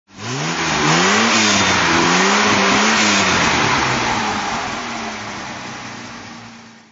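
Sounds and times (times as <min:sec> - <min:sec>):
Jaguar XJ6 4.2 engine throttle: 0:00.1 - 0:06.9.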